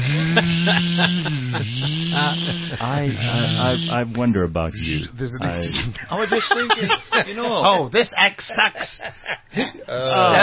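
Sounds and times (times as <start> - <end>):
laughter: 0.0 - 4.0, 5.3 - 10.4
vacuum cleaner motor droning: 0.0 - 4.0
speech: 0.7 - 10.4.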